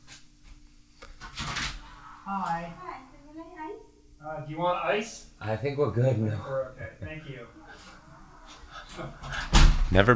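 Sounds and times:
laughter: 1.5s - 10.1s
speech: 2.3s - 2.9s, 4.2s - 7.6s, 9.9s - 10.1s
knock on a door: 9.3s - 10.1s.

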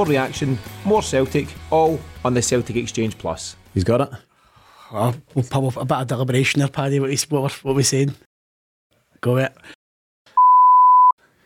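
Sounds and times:
speech: 0.0s - 4.3s, 4.9s - 8.3s, 9.2s - 9.8s
loud steady censor beep over a spoken full name: 10.4s - 11.2s.

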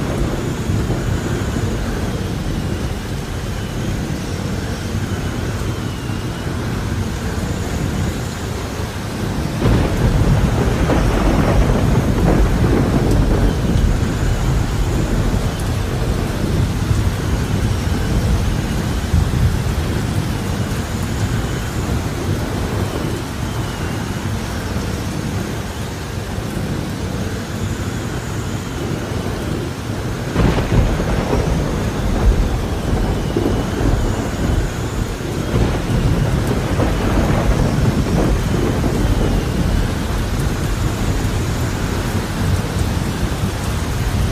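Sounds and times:
faint high whine: 0.0s - 44.3s
rain falling with a heavy low rumble: 0.0s - 44.3s.

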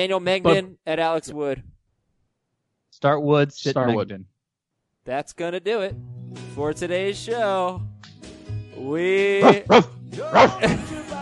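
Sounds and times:
speech: 0.0s - 1.7s, 3.0s - 4.3s, 5.0s - 7.9s, 8.8s - 11.2s
dog barking: 9.4s - 10.7s.

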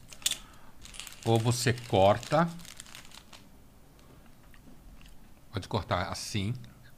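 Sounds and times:
cigar wrapper crinkling as it is opened: 0.0s - 3.5s
speech: 1.2s - 2.6s, 5.6s - 6.7s.

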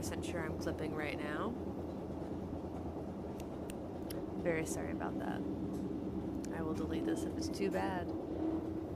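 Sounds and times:
speech: 0.0s - 1.8s, 4.4s - 5.9s, 6.6s - 8.2s
steady loud interior train rumble: 0.0s - 8.9s.

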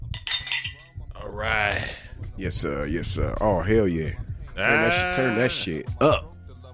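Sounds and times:
glasses clinking in a toast: 0.0s - 0.9s
speech: 1.3s - 6.3s.

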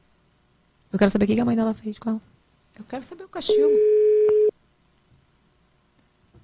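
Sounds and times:
speech: 0.9s - 4.0s
telephone line tone while placing a call: 3.5s - 4.5s.

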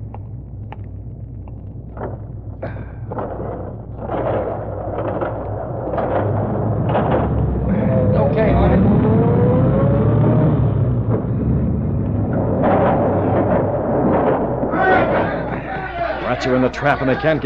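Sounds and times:
car engine rumbling as the vehicle drives in through an opened door: 0.0s - 17.4s
speech: 2.6s - 3.0s, 16.4s - 17.4s
faint voices: 7.0s - 9.6s, 14.1s - 17.4s.

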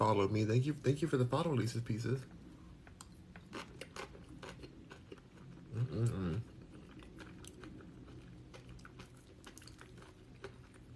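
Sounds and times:
speech: 0.0s - 2.4s, 6.0s - 6.5s
crunchy chewing of leftover nachos: 2.9s - 10.9s.

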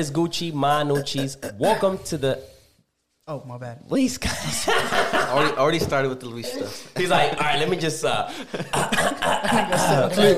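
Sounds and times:
speech: 0.0s - 2.5s, 3.3s - 10.3s
laughter: 4.3s - 5.8s, 7.0s - 10.3s
person clearing throat into the microphone: 8.7s - 10.1s.

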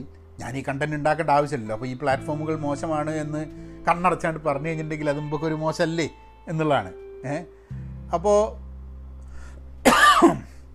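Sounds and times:
speech: 0.0s - 8.6s
man clearing his throat with a cough: 9.9s - 10.6s.

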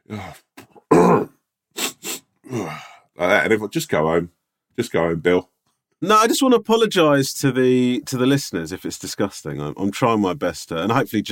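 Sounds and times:
speech: 0.1s - 0.5s, 2.5s - 11.2s
person imitating raspy throat clearing of someone with a cold: 0.7s - 2.8s
person coughing harshly: 0.8s - 2.7s.

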